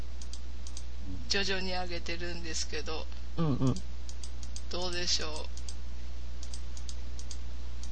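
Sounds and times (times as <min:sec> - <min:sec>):
rapid clicking of a computer mouse: 0:00.2 - 0:00.9, 0:04.1 - 0:05.8, 0:06.4 - 0:07.9
speech: 0:01.3 - 0:03.9, 0:04.7 - 0:05.6.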